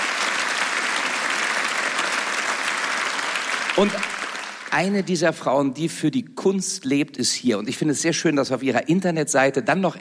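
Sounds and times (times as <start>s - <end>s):
audience applause: 0.0s - 5.0s
speech: 3.8s - 4.1s, 4.7s - 9.9s.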